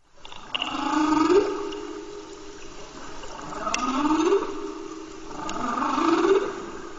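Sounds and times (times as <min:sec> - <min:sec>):
humpback whale song from the North Atlantic, sped up: 0:00.4 - 0:06.9.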